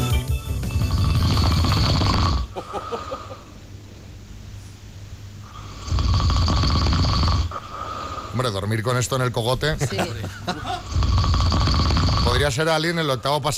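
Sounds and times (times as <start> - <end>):
loud rasping snoring: 0.8 - 3.3, 5.4 - 8.4, 10.8 - 12.5
laughter: 2.5 - 3.5, 9.7 - 10.9
quiet breathing: 2.6 - 3.6, 7.3 - 8.4
speech: 8.4 - 10.9, 12.4 - 13.5.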